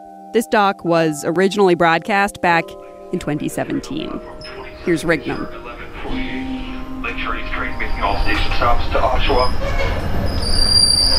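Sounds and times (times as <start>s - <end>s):
humming tones: 0.0s - 10.4s
speech: 0.4s - 6.4s, 7.1s - 10.4s
moving train to Pickering Ontario rumbling: 3.2s - 11.1s
thin high-pitched train wheel squeals: 8.1s - 11.1s.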